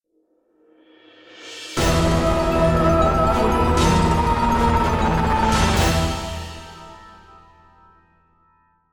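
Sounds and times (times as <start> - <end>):
vampire lair music stinger: 1.8 - 7.6.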